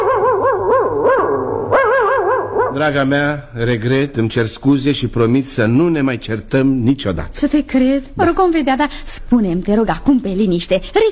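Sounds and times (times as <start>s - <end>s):
family dog giving yelping barks: 0.0s - 2.9s
speech: 2.8s - 11.0s.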